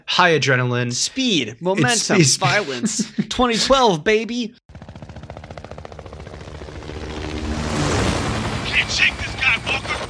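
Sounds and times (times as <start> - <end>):
speech: 0.2 - 4.6
laughter: 1.8 - 3.9
helicopter engine drone from a video game battle: 4.7 - 10.0.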